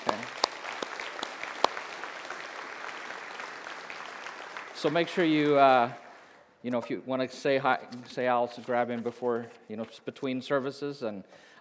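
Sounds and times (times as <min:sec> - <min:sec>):
audience applauding: 0:00.0 - 0:06.3
speech: 0:04.8 - 0:06.0, 0:06.6 - 0:11.5.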